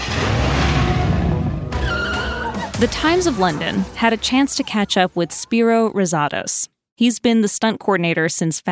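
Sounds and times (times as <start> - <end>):
car roaring through a chase: 0.0 - 4.2
tires skidding with a high squeal: 0.0 - 4.8
speech: 2.8 - 8.7.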